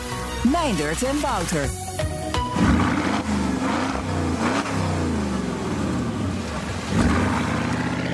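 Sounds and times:
speech: 0.4s - 1.8s
2004 Porsche Cayenne Turbo V8 engine revving: 2.4s - 8.1s.

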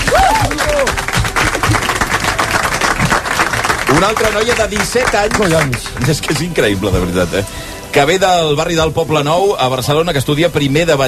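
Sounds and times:
audience whistle or cheer: 0.0s - 1.0s
audience clapping for a young female singer: 0.0s - 7.2s
speech: 4.0s - 11.0s.

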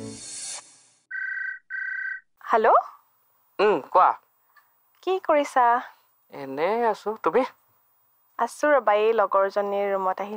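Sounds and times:
telephone ringing with electronic trill: 1.1s - 10.3s
speech: 2.5s - 2.9s, 3.6s - 4.2s, 5.0s - 7.6s, 8.4s - 10.3s.

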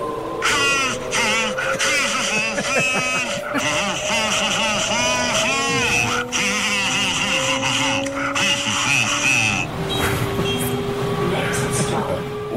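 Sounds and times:
steady rumble of train noise: 0.0s - 12.5s
laughter: 0.4s - 9.7s
man humming a tune: 0.4s - 9.7s.

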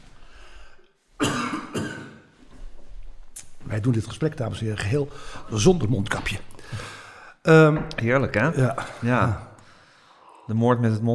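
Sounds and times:
person coughing: 1.2s - 2.3s
speech: 3.7s - 9.5s, 10.5s - 11.1s.

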